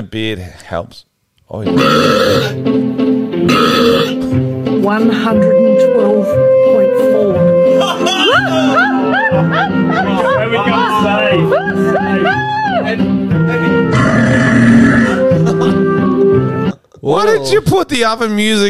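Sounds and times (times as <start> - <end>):
speech: 0.0 - 15.4, 17.0 - 18.6
backing music: 1.6 - 16.8
very loud drawn-out human burp: 1.8 - 2.6, 3.5 - 4.2, 13.9 - 15.4
laughter: 7.7 - 12.9, 15.1 - 16.2.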